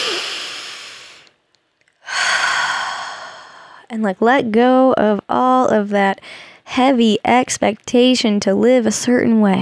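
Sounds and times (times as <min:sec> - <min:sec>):
deep breathing: 0:00.0 - 0:01.4, 0:02.0 - 0:03.9
speech: 0:03.9 - 0:09.6.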